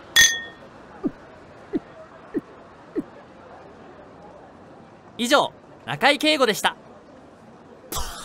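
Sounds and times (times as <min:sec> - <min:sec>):
glasses clinking in a toast: 0:00.1 - 0:00.6
speech: 0:05.2 - 0:06.8.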